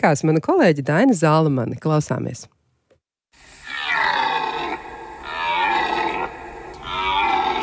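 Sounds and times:
speech: 0.0 - 2.6
red deer stag bellowing during the autumn rut: 3.6 - 7.6.

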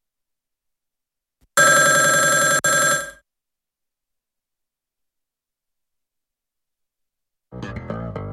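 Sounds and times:
telephone ringing tone: 1.6 - 3.2.

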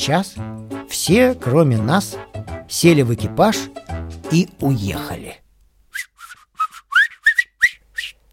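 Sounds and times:
speech: 0.1 - 5.4
person whistling a tune: 5.9 - 8.2.

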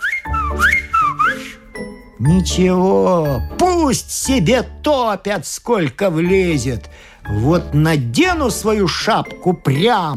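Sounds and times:
short lively whistle by a man: 0.0 - 2.0
speech: 2.2 - 10.1.

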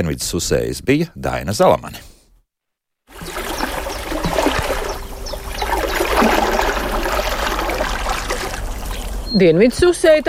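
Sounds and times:
speech: 0.0 - 2.1, 9.3 - 10.2
small river water trickling and burbling in upper reaches at Aknīste in Sēlija: 3.1 - 9.4.

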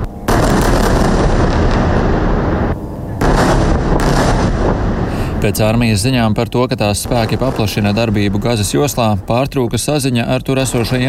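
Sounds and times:
powerful explosions of heavy bombardment: 0.0 - 11.0
speech: 5.4 - 11.0.

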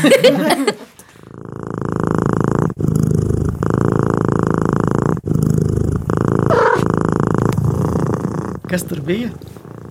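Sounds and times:
laughter: 0.0 - 0.9
speech: 0.0 - 0.9, 8.7 - 9.5
cat purring: 1.1 - 9.8.

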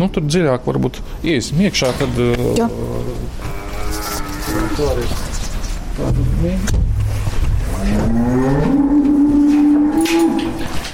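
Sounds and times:
speech: 0.0 - 4.0, 4.6 - 5.3, 6.0 - 7.0, 7.8 - 8.9
herd of Latvian Brown cows mooing in a tie-stall barn: 2.6 - 5.1, 7.7 - 10.9.

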